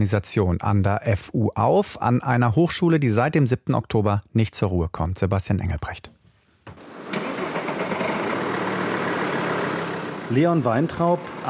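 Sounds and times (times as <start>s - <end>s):
speech: 0.0s - 6.2s, 10.3s - 11.4s
car engine cranking, starting and idling in front of a hotel in central Berlin: 6.7s - 11.4s.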